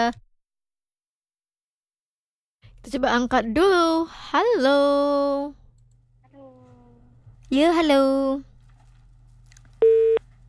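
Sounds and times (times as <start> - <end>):
speech: 0.0 - 0.2, 2.8 - 5.6, 7.5 - 8.5
phone busy tone after a call's line is cut off: 9.8 - 10.4.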